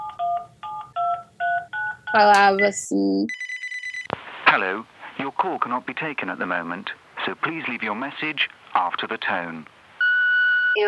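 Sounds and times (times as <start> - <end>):
DTMF keypad tones of a phone number being dialed: 0.0 - 3.5
speech: 2.1 - 3.4, 4.5 - 9.8.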